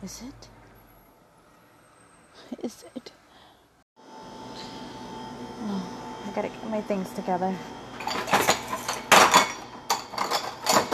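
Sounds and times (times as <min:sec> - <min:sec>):
speech: 0:00.0 - 0:00.6, 0:02.5 - 0:03.1, 0:06.4 - 0:07.8
dishes and utensils clattering while being washed: 0:08.0 - 0:10.9.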